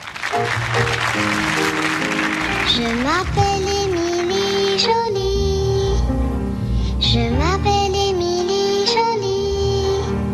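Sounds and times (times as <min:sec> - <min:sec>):
studio audience applause: 0:00.0 - 0:05.1
faint simple melody: 0:00.4 - 0:10.3
speech: 0:02.8 - 0:03.8.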